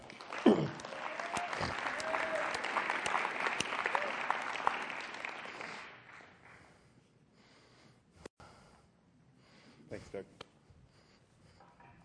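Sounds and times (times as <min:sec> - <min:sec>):
people cheering and whooping: 0:00.0 - 0:05.9
audience applause in a room: 0:00.0 - 0:06.6.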